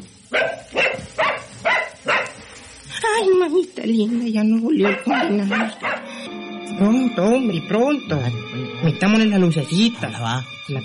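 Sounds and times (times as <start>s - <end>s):
dog barking loudly at night: 0.3s - 2.4s, 4.8s - 6.1s
speech: 3.6s - 5.9s, 6.7s - 10.8s.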